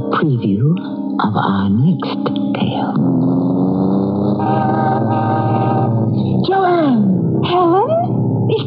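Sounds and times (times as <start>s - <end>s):
speech: 0.2s - 2.3s
sports car engine rumbling as the car pulls up: 3.0s - 8.5s.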